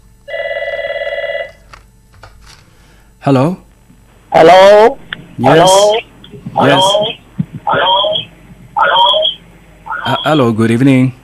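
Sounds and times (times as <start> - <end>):
telephone ringing for an incoming call: 0.3 - 1.6, 6.6 - 10.2
speech: 3.2 - 3.6, 4.3 - 7.1, 10.2 - 11.2.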